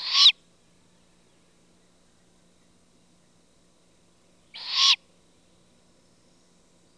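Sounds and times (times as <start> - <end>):
great horned owl juvenile hissing screeches: 0.0 - 0.4, 4.6 - 5.0.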